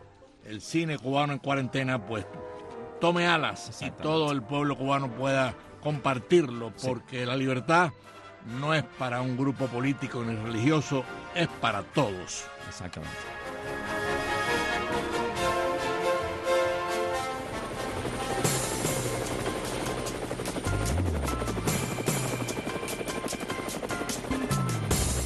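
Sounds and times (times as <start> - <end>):
speech: 0.4 - 2.4, 3.0 - 13.9
helicopter engine whine: 13.5 - 25.2
helicopter rotor blades thumping: 17.4 - 25.2.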